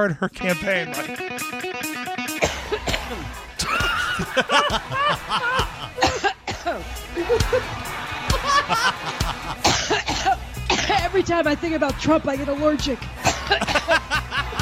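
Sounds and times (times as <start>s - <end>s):
speech: 0.0s - 2.0s, 4.2s - 10.1s, 11.1s - 14.0s
music: 0.0s - 14.6s
person coughing: 2.4s - 4.3s, 6.0s - 6.8s, 9.6s - 11.0s, 13.2s - 13.9s
laughter: 2.6s - 14.6s.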